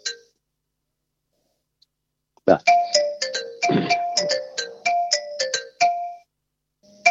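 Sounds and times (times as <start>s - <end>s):
phone ringtone of bright electronic tones: 0.0s - 0.3s, 2.6s - 7.1s
speech: 2.5s - 2.8s.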